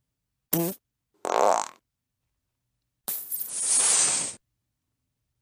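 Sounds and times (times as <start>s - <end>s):
farts: 0.5s - 1.8s, 3.1s - 4.4s.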